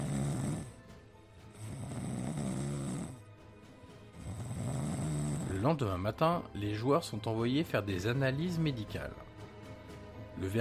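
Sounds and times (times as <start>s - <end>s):
man snoring loudly in an airplane cabin: 0.0s - 3.4s, 4.1s - 5.8s
speech: 5.6s - 9.3s, 10.4s - 10.6s.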